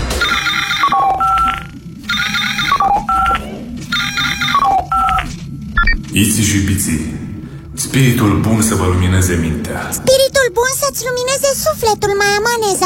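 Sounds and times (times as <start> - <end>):
incoming call ringing on a spaceship: 0.2 - 6.0
speech: 6.1 - 12.8.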